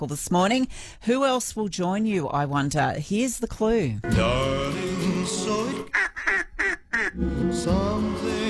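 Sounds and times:
speech: 0.0 - 6.0, 7.1 - 8.4
duck quacking: 5.7 - 7.2.

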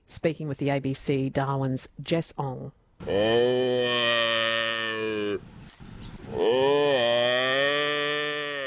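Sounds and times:
speech: 0.1 - 4.6
water buffalo bellowing: 3.0 - 5.4, 6.3 - 8.6.

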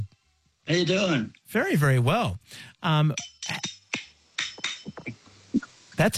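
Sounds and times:
speech: 0.7 - 3.8, 5.0 - 6.1
very old silver spoons clacking as percussion: 3.1 - 5.2.

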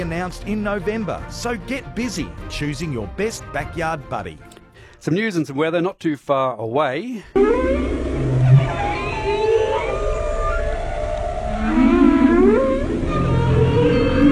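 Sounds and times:
speech: 0.0 - 7.8
whale song of drawn-out moaning calls: 7.4 - 14.3.

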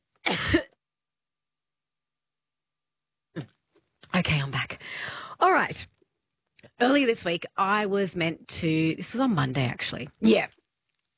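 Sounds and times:
person coughing: 0.2 - 0.8
speech: 3.4 - 6.0, 6.7 - 10.6.

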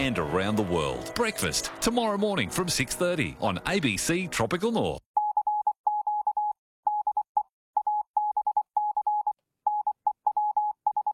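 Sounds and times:
speech: 0.0 - 5.1
Morse code beep tone: 5.2 - 11.1.

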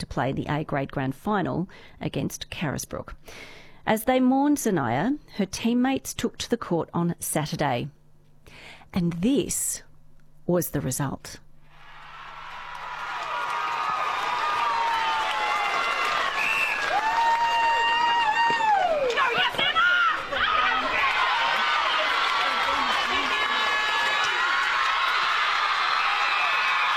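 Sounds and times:
speech: 0.0 - 8.0, 8.6 - 9.9, 10.5 - 11.4
netball players cheering and celebrating a grand final win on court: 11.8 - 26.9
high whooping cries: 11.9 - 26.9.

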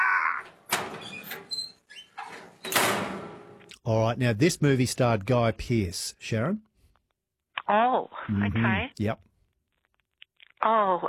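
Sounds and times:
metal door grinding, squealing and clanking as it swings shut: 0.4 - 3.7
speech: 3.9 - 6.7, 7.7 - 9.3, 10.6 - 11.0.

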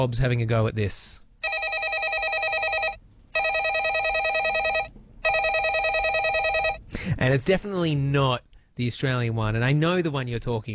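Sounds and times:
speech: 0.0 - 1.2, 7.1 - 10.7
landline telephone ringing sound effect: 1.4 - 6.8.

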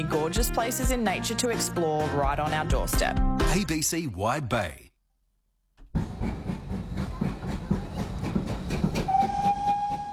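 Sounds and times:
speech: 0.0 - 4.8
steam train chugging: 5.9 - 10.1
steam train whistle: 9.0 - 10.1.

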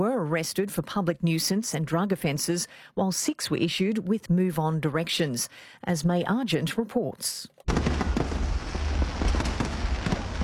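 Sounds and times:
speech: 0.2 - 8.0
fireworks exploding in a rapid barrage: 7.7 - 10.4.

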